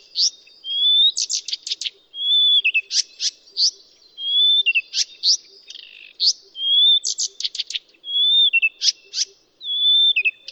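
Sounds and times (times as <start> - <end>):
Blyth's reed warbler song: 0.0 - 10.5.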